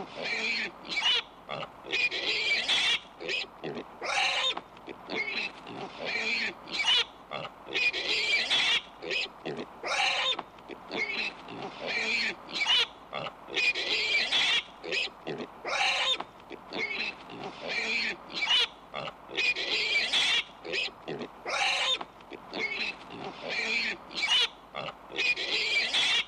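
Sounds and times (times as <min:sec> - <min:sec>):
pig grunting in short harsh bursts: 0:00.0 - 0:00.7, 0:01.5 - 0:26.2.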